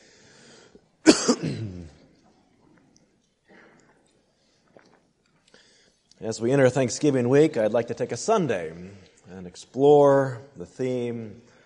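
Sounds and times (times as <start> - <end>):
faint room noise: 0.0 - 11.6
single loud harsh cough with rattling throat clearing: 1.0 - 1.9
speech: 1.4 - 2.0, 6.2 - 11.5.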